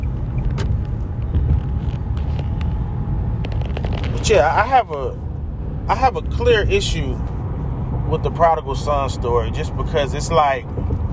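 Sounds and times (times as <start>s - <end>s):
line of heavy trucks rumbling in traffic: 0.0s - 11.1s
speech: 4.3s - 5.3s, 5.9s - 7.3s, 8.1s - 10.9s.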